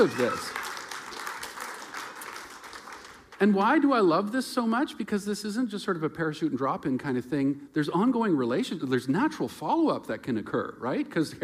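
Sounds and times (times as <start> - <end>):
speech: 0.0 - 0.6, 3.4 - 11.4
audience applause: 0.0 - 3.5.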